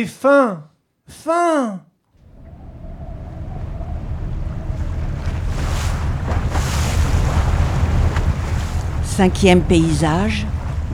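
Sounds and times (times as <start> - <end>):
speech: 0.0 - 1.9, 9.1 - 10.9
water washing around a rowing boat out at sea: 2.2 - 10.9
wind at sea: 2.2 - 10.9.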